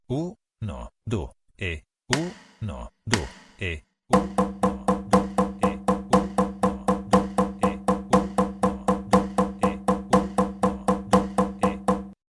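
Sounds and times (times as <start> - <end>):
drum: 4.2 - 12.2
metronome clicking for an exercise: 4.2 - 12.2.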